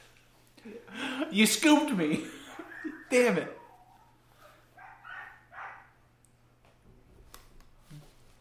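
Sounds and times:
speech: 0:00.6 - 0:02.4, 0:03.1 - 0:03.6
laughter: 0:02.1 - 0:03.4
dog barking: 0:02.5 - 0:06.0.

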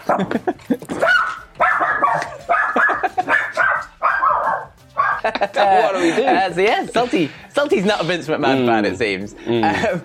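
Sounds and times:
laughter: 0:00.0 - 0:01.0, 0:02.4 - 0:03.6, 0:05.2 - 0:07.3
speech: 0:00.2 - 0:01.1, 0:05.4 - 0:10.0
dog barking: 0:01.0 - 0:05.3.

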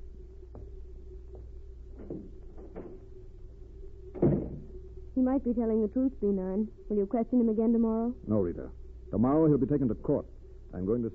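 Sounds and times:
steady low hum: 0:00.0 - 0:11.1
door opening and closing: 0:02.0 - 0:03.1, 0:04.1 - 0:04.8
speech: 0:05.2 - 0:11.1.

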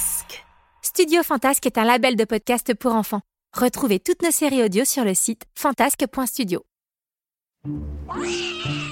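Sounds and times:
speech: 0:01.0 - 0:06.7, 0:07.7 - 0:08.8
cat meowing: 0:08.1 - 0:08.9.

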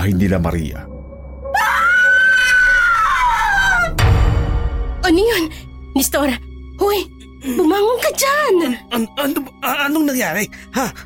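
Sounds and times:
speech: 0:00.0 - 0:00.9, 0:05.1 - 0:11.0
terrifying scream from a nearby house: 0:01.4 - 0:04.0.

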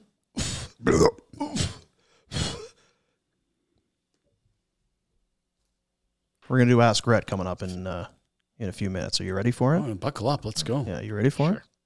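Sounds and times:
speech: 0:00.8 - 0:01.2, 0:06.5 - 0:11.7
loud guttural belches: 0:00.8 - 0:01.8.

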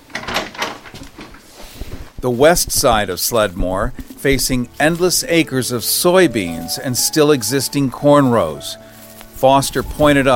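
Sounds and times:
pantry door in a house built in 1713 opening and closing: 0:00.0 - 0:01.4
speech: 0:02.2 - 0:10.3.

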